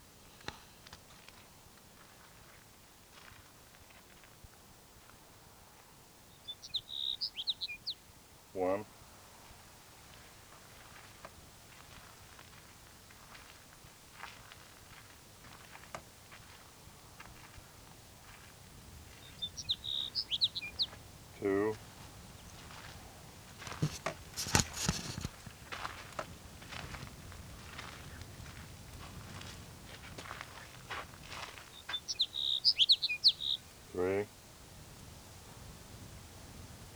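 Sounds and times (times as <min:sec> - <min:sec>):
low steady hiss: 0:00.0 - 0:36.9
sage sparrow song: 0:06.2 - 0:08.8, 0:18.4 - 0:25.6, 0:27.1 - 0:34.2.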